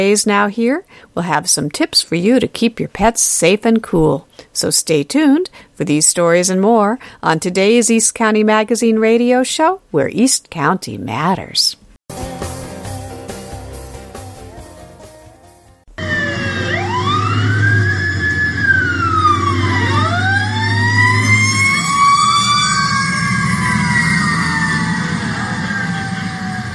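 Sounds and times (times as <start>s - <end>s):
speech: 0.0s - 12.5s
emergency vehicle sirens responding to a fire near a highway junction: 15.9s - 26.7s.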